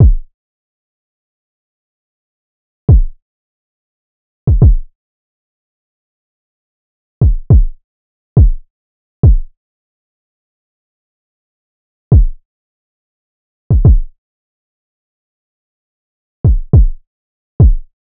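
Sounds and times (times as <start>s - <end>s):
RnB drum loop with kick at 104 BPM: 0.0s - 0.2s, 2.9s - 3.1s, 4.5s - 4.9s, 7.2s - 7.8s, 8.4s - 8.6s, 9.2s - 9.5s, 12.1s - 12.4s, 13.7s - 14.1s, 16.4s - 17.0s, 17.6s - 17.8s.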